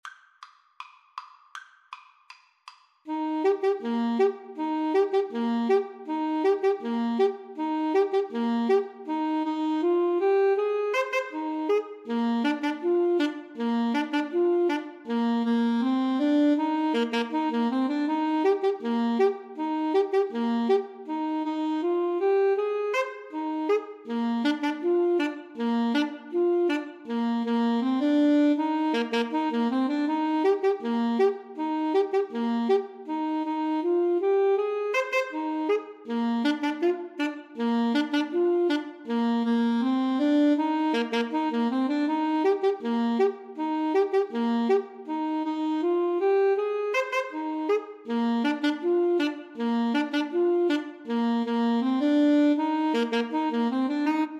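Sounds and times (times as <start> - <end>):
clarinet and saxophone duet: 3.1 - 54.3.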